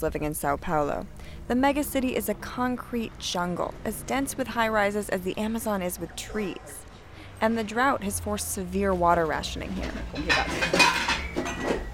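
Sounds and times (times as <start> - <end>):
speech: 0.0 - 6.8, 7.4 - 11.0
dishes and cutlery clinking in a kitchen sink piled high with dishes: 9.8 - 11.9.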